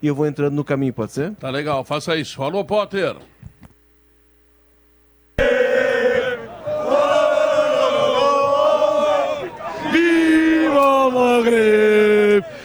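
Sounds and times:
speech: 0.0s - 3.4s, 11.1s - 12.6s
crowd of football fans cheering: 5.4s - 12.6s.

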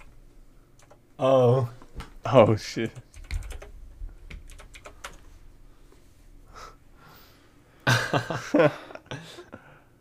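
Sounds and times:
several people typing on computer keyboards: 0.8s - 1.0s, 2.9s - 3.7s, 4.3s - 5.2s
speech: 1.2s - 3.0s, 8.1s - 8.9s
laughter: 7.9s - 9.5s.

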